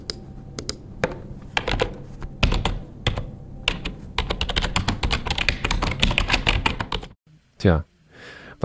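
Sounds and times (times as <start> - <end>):
computer keyboard typing: 1.6 - 7.2
speech: 7.6 - 7.9.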